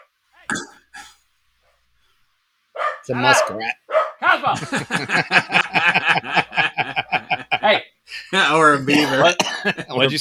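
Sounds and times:
dogs barking at backyard creature: 2.8 - 4.2
speech: 3.1 - 6.4, 7.7 - 10.1
laughter: 4.2 - 10.1.

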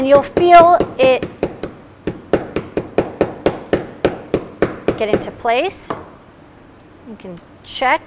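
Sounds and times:
speech: 0.0 - 1.3, 5.0 - 6.1, 7.1 - 8.0
hammer tapping a part into place through a protective jig: 0.0 - 6.1.

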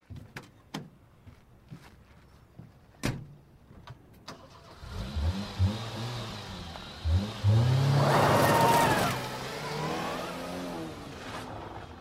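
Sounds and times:
car engine cranking, starting, revving and pulling away: 4.3 - 11.9.

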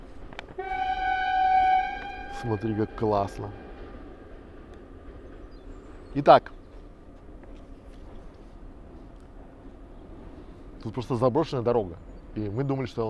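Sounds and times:
low rumble of a passing train: 0.0 - 13.0
passing train horn blast: 0.5 - 4.0
speech: 2.4 - 3.6, 6.1 - 6.6, 10.8 - 13.0.

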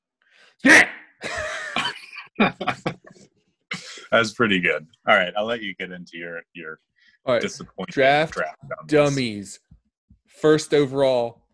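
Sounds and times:
speech: 0.6 - 0.9, 4.1 - 9.7, 10.3 - 11.5
laughter: 1.2 - 3.2
person fake coughing to pronounce a name: 1.4 - 2.7.

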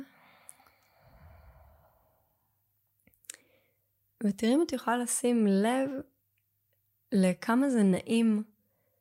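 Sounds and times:
slow deep exhale during breathing exercise: 0.0 - 2.5
speech: 4.2 - 6.1, 7.1 - 8.5.

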